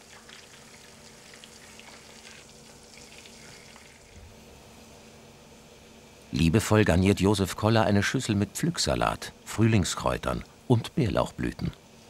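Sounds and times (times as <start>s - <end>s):
char fillets frying in elderflower oil: 0.0s - 4.2s
speech: 6.3s - 11.8s.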